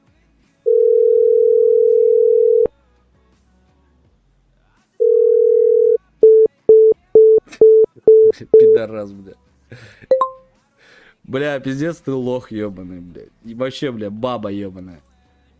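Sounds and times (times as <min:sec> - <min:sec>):
telephone line tones while placing a call: 0:00.7 - 0:02.7, 0:05.0 - 0:08.8
speech: 0:08.7 - 0:09.9, 0:11.3 - 0:15.1.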